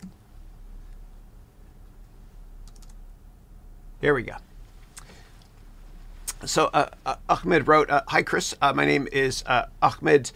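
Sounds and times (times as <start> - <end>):
quick typing on a new computer keyboard that works with two computers: 2.6 - 3.0
speech: 4.0 - 4.5, 6.4 - 10.3.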